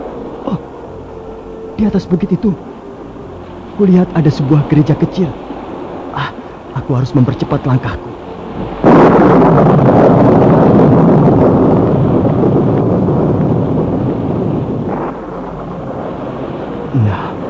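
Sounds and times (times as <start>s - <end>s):
gusting wind in a storm outside a small hilltop church: 0.0s - 17.4s
speech: 1.8s - 2.7s, 3.8s - 5.4s, 6.2s - 8.1s
thunder in a storm outside a small hilltop church: 8.5s - 17.4s.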